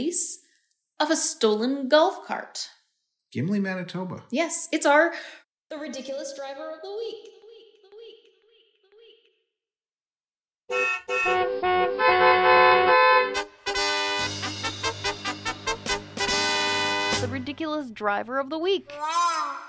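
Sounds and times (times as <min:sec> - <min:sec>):
speech: 0:00.0 - 0:00.3, 0:01.0 - 0:07.4, 0:10.7 - 0:13.0, 0:17.2 - 0:19.6
car horn honking: 0:10.7 - 0:17.4.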